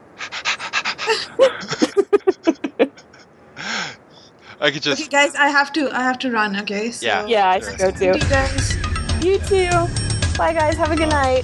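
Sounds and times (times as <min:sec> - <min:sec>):
person panting like a dog: 0:00.1 - 0:04.7
laughter: 0:00.9 - 0:05.4, 0:07.1 - 0:09.9
speech: 0:01.1 - 0:01.8, 0:04.6 - 0:11.4.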